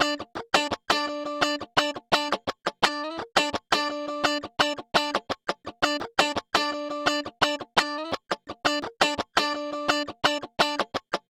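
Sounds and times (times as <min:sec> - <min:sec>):
guitar: 0:00.0 - 0:11.2.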